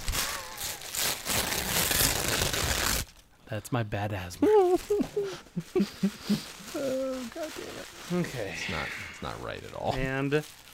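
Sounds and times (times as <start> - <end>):
tissue paper tearing and crinkling: 0.0 - 3.2, 5.8 - 10.7
speech: 3.5 - 10.6.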